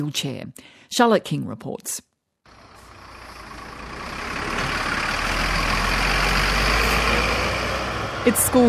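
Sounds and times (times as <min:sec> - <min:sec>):
speech: 0:00.0 - 0:02.1, 0:08.2 - 0:08.6
heavy coaches rumbling along a busy road delivering children to school: 0:02.5 - 0:08.6
steady traffic noise on a busy road: 0:02.5 - 0:08.6.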